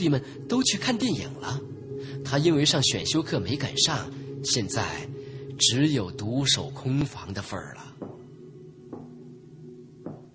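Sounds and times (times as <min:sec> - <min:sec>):
speech: 0:00.0 - 0:08.2
knocking on a dormitory room door: 0:08.0 - 0:08.2, 0:10.0 - 0:10.3.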